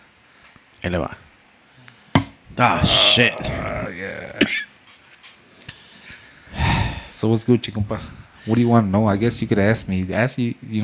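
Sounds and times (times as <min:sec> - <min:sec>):
speech: 0:00.8 - 0:01.2, 0:02.6 - 0:04.7, 0:07.2 - 0:10.8
person coughing: 0:02.7 - 0:04.7.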